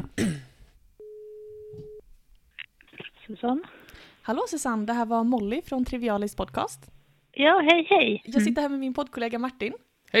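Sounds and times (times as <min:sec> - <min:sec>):
person clearing throat: 0:00.0 - 0:00.6
ringback tone from an outgoing phone call: 0:01.0 - 0:02.0
speech: 0:03.3 - 0:10.1.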